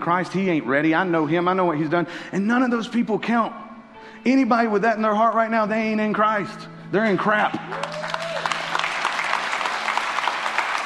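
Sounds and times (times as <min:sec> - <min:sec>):
speech: 0:00.0 - 0:08.1
large crowd applauding: 0:07.6 - 0:10.8.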